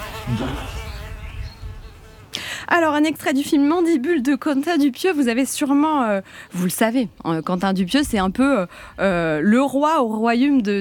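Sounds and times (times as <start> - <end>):
fly buzzing: 0.0 - 2.5
speech: 0.3 - 0.8, 2.7 - 10.7.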